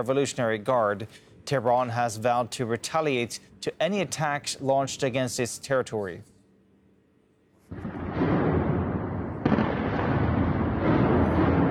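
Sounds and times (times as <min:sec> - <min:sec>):
speech: 0:00.0 - 0:06.3
continuous rumbling roar of air defense systems firing: 0:07.7 - 0:11.6
loud blasts from air defense systems firing in a capital city: 0:07.7 - 0:11.6.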